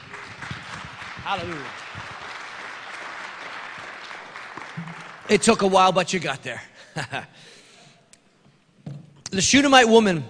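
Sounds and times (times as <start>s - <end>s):
audience clapping hands in praise to God: 0.0s - 6.4s
speech: 1.2s - 2.0s, 5.3s - 7.6s, 9.3s - 10.2s.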